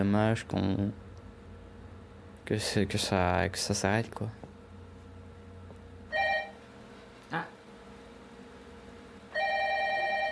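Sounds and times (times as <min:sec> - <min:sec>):
speech: 0:00.0 - 0:01.0, 0:02.5 - 0:04.5
telephone ringing with bright electronic tone: 0:06.1 - 0:06.6, 0:09.3 - 0:10.2.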